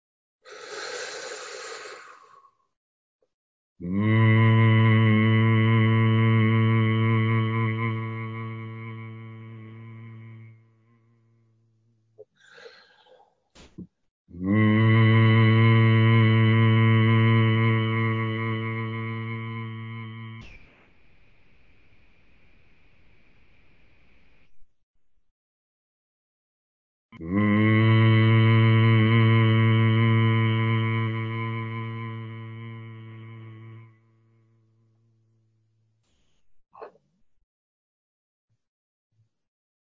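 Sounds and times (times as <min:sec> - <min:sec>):
breath: 0:00.4 - 0:02.8, 0:12.3 - 0:13.4
person humming on one low pitch: 0:03.8 - 0:11.0, 0:14.3 - 0:20.6, 0:27.2 - 0:34.1.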